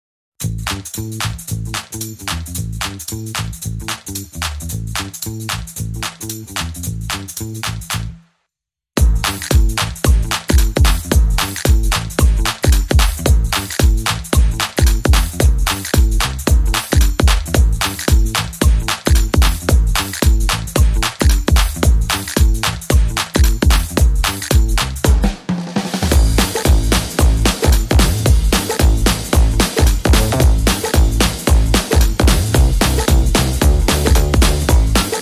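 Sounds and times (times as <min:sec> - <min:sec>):
big band bass: 0:00.4 - 0:08.3, 0:09.0 - 0:35.2
big band drums: 0:09.0 - 0:35.2.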